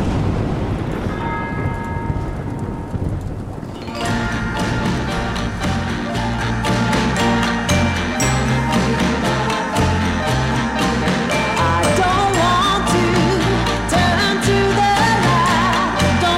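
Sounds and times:
rumbling rain-like wash: 0.0s - 6.2s
church bell tolling: 0.9s - 2.9s, 3.7s - 12.9s
loud full-band song: 4.0s - 16.3s.

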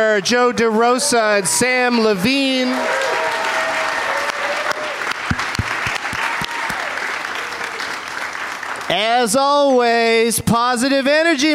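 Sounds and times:
speech: 0.0s - 3.2s, 8.9s - 11.5s
live crowd applauding: 0.0s - 9.9s
faint whoops from the crowd: 2.8s - 5.2s, 6.0s - 7.8s.

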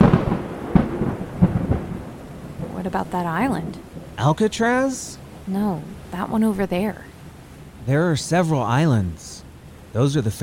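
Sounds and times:
low rolling thunder from an approaching storm: 0.0s - 5.4s
speech: 2.8s - 7.1s, 7.9s - 10.4s.

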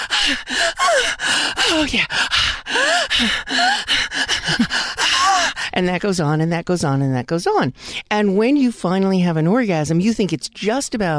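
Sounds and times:
moaning: 0.0s - 5.6s
person imitating heavy aroused breathing with gasps: 0.0s - 5.8s
speech: 1.7s - 4.0s, 5.8s - 11.1s.

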